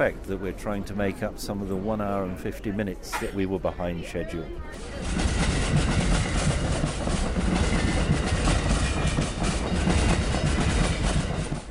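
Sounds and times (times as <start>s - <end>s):
speech: 0.0s - 6.0s
passenger train rattling along the tracks heard from on board: 4.8s - 11.6s.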